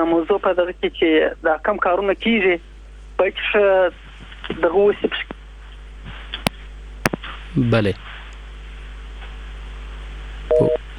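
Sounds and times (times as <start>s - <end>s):
speech: 0.0s - 5.3s, 7.6s - 8.1s
faint low hum: 0.0s - 10.9s
two-note telephone line tone after a call is cut off: 10.5s - 10.9s.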